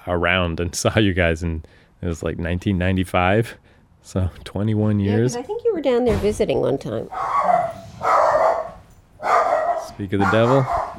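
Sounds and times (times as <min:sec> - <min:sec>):
speech: 0:00.1 - 0:07.7, 0:10.0 - 0:10.9
dog barking: 0:07.1 - 0:10.9.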